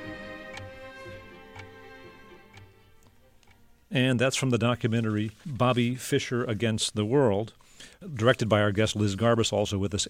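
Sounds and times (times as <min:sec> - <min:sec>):
chess clock ticking: 0:00.0 - 0:04.8
speech: 0:03.9 - 0:10.0.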